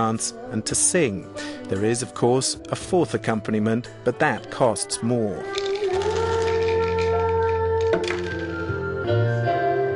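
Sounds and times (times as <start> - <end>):
speech: 0.0 - 6.2
music in a busy room: 0.0 - 9.9
dice rattling in a cup: 5.4 - 8.7.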